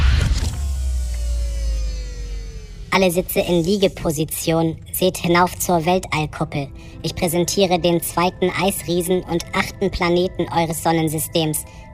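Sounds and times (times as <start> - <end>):
electric motor whir of a motorised command bridge retracting: 0.0 - 2.9
speech: 3.0 - 11.8.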